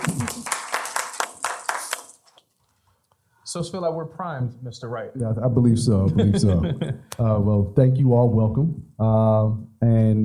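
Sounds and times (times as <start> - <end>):
laughter: 0.0 - 0.7, 5.9 - 7.1
audience applause: 0.0 - 2.3
speech: 3.5 - 10.2.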